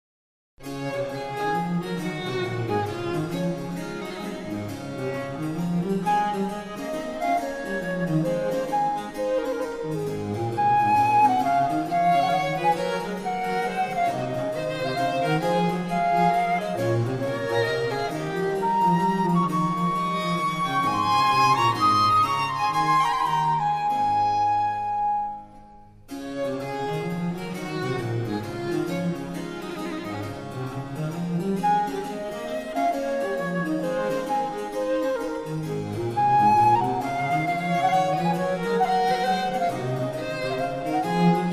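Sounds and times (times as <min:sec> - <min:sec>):
basso continuo in a concerto: 0:00.6 - 0:41.5
cello in a concerto in D major: 0:00.6 - 0:41.5
violin in a concerto: 0:00.6 - 0:41.5
baroque traverso in a concerto in D major: 0:05.5 - 0:28.4, 0:31.4 - 0:41.5.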